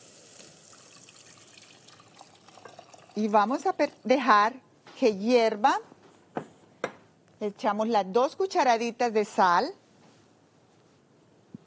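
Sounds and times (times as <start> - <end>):
water pouring into a cooking pot for rice: 0.0 - 3.9
speech: 3.2 - 5.9, 7.4 - 9.8.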